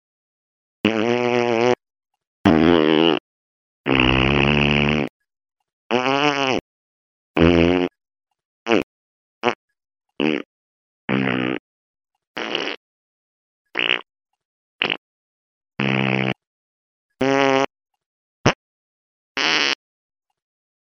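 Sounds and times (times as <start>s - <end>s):
farting: 0.8s - 1.8s, 2.5s - 3.2s, 3.9s - 5.2s, 5.9s - 6.7s, 7.4s - 8.0s, 8.7s - 9.6s, 10.2s - 10.5s, 11.1s - 11.6s, 12.4s - 12.8s, 13.7s - 14.1s, 14.8s - 15.0s, 15.8s - 16.5s, 17.2s - 17.7s, 19.4s - 19.8s.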